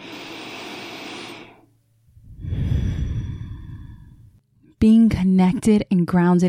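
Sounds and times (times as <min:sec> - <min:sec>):
deep slow breathing: 0:00.0 - 0:04.4
speech: 0:04.8 - 0:06.4.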